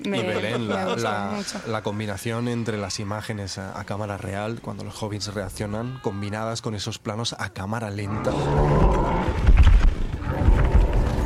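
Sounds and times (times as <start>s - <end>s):
laughter: 0.0s - 2.1s
speech: 0.0s - 9.5s
horses galloping in a film scene: 8.6s - 11.2s.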